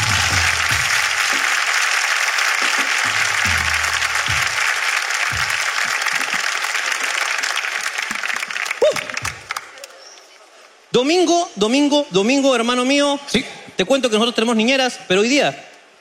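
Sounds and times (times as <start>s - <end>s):
audience applause: 0.0s - 10.0s
speech: 11.0s - 15.7s.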